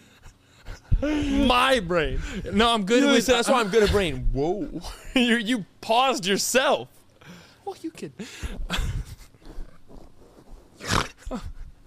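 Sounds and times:
speech: 1.0 - 7.0, 7.7 - 8.8, 11.3 - 11.5
person imitating pig snorts: 10.8 - 11.6.

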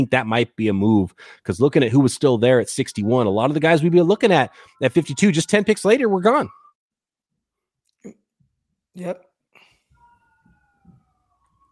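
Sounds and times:
speech: 0.0 - 6.6, 9.0 - 9.3
ambulance siren wailing: 1.7 - 6.8, 9.9 - 11.7.

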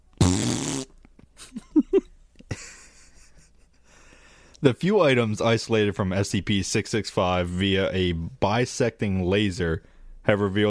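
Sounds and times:
long loud buzzing fart: 0.1 - 1.0
speech: 4.6 - 10.6.

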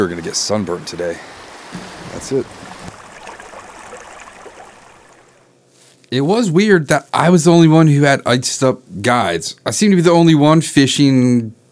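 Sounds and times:
speech: 0.0 - 2.7, 6.1 - 11.6
river water rushing and gurgling: 1.2 - 5.5.

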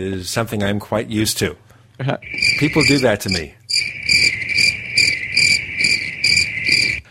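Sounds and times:
speech: 0.0 - 3.9
crickets chirping: 2.2 - 7.0.

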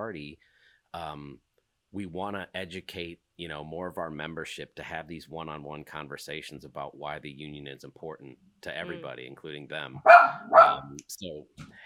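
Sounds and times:
speech: 0.0 - 11.8
dog bark: 10.0 - 10.9.

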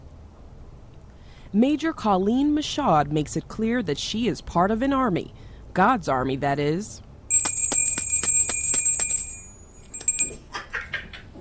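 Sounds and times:
speech: 1.5 - 7.0
hand bell ringing for charity donations: 7.3 - 10.5.

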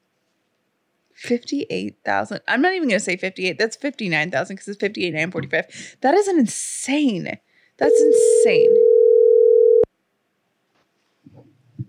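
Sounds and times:
speech: 1.2 - 8.8
phone dial tone after a dropped call: 7.9 - 9.9.

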